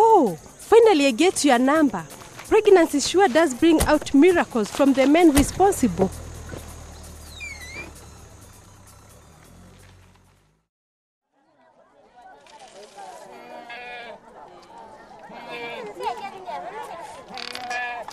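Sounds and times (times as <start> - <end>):
speech: 0.8 - 6.2
goats bleating: 13.4 - 14.2, 15.3 - 16.0, 17.5 - 18.1.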